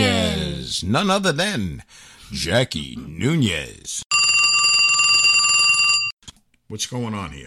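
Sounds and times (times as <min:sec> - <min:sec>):
speech: 0:00.8 - 0:04.2, 0:06.7 - 0:07.4
telephone bell ringing with electronic trill: 0:04.1 - 0:06.2.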